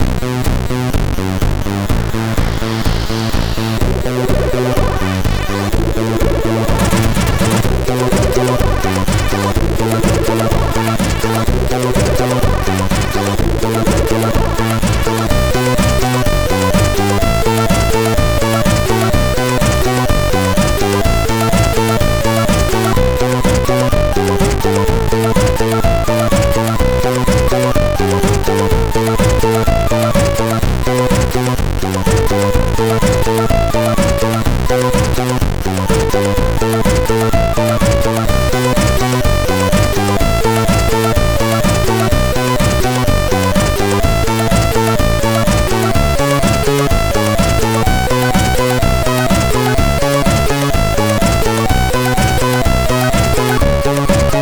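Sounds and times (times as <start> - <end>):
chiptune loader music remix on MOS6581R4 sound chip: 0.1 - 54.3.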